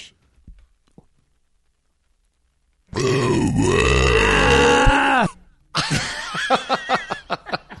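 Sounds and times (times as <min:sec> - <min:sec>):
long loud croaking burp: 0:02.9 - 0:05.4
laughter: 0:05.8 - 0:07.7.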